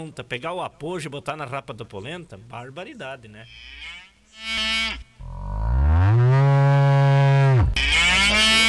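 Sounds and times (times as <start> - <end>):
speech: 0.0 - 5.0
cow mooing: 4.4 - 8.6.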